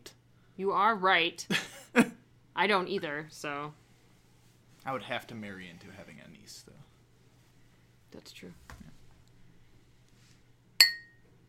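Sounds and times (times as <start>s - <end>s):
speech: 0.6s - 3.8s, 4.8s - 6.9s, 8.1s - 8.8s
tall drinking glasses clinking together: 10.8s - 11.2s.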